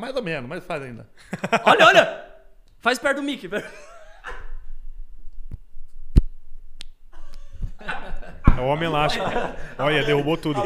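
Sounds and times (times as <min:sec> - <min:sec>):
speech: 0:00.0 - 0:03.9, 0:08.5 - 0:10.6
people laughing: 0:01.2 - 0:02.2, 0:03.6 - 0:04.7, 0:07.2 - 0:10.6
belly skin pulled and snapped back: 0:05.5 - 0:07.5.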